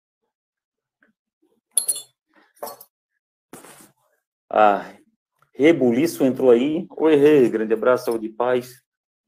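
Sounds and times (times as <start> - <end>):
metal medals clinking together as they are handled and shown: 1.8 - 2.8
speech: 4.5 - 5.0, 5.6 - 8.8.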